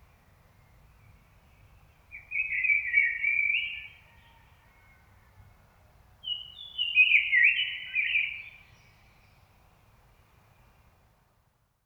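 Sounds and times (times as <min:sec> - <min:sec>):
Common blackbird Turdus merula song: 0:00.7 - 0:04.1, 0:06.2 - 0:09.5.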